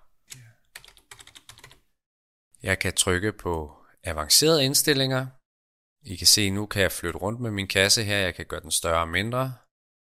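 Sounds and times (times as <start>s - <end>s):
typing on a computer keyboard: 0.3s - 1.8s
speech: 2.6s - 5.4s, 6.0s - 9.6s.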